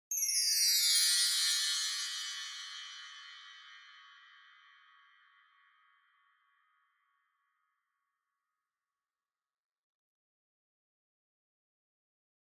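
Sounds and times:
low wind chimes with reverb: 0:00.1 - 0:06.0.

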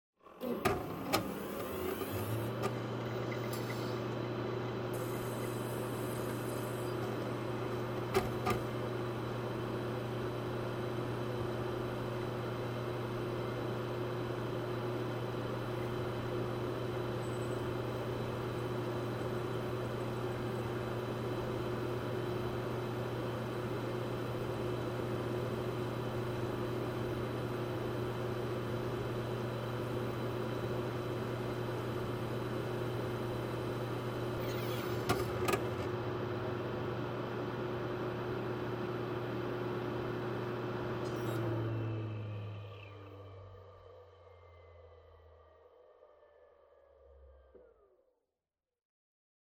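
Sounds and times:
PC operating noise switching on and off: 0:00.2 - 0:47.9.

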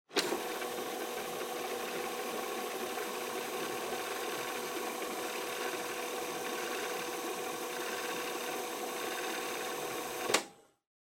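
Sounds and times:
portable stereo tape fast forwarding: 0:00.1 - 0:10.5
portable stereo tape stop: 0:09.2 - 0:10.5.

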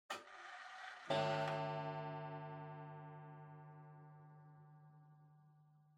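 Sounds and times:
short pendulum clock chime: 0:00.7 - 0:05.6.

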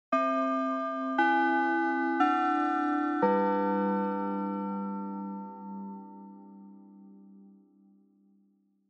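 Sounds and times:
slow short Japanese school bell: 0:00.2 - 0:07.2.

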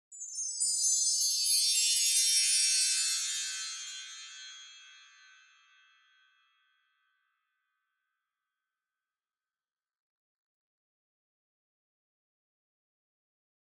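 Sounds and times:
wind chimes with reverb: 0:00.1 - 0:06.6.

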